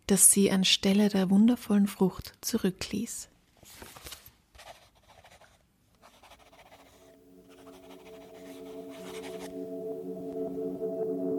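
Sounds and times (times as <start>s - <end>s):
speech: 0.1s - 3.9s
pen writing on paper: 4.6s - 9.6s.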